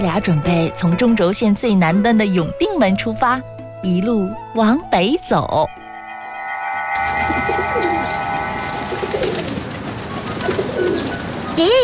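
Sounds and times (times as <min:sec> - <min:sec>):
speech: 0:00.0 - 0:05.8, 0:11.6 - 0:11.8
large flock of pigeons whistling overhead in the sky over Beijing: 0:06.6 - 0:11.8
pigeon wings fluttering rustle: 0:07.0 - 0:11.8.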